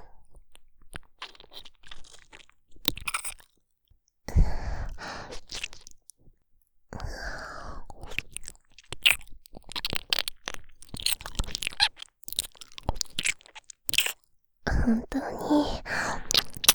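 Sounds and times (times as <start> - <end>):
crunchy biting and chewing in an ear-nibbling role-play: 0.9 - 3.6, 5.3 - 6.1, 7.9 - 14.3, 16.1 - 16.7
speech: 14.9 - 15.8.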